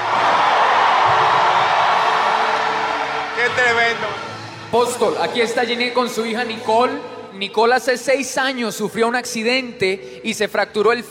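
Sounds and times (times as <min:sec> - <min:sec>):
large audience applauding and shouting in celebration: 0:00.0 - 0:06.7
speech: 0:03.6 - 0:11.0.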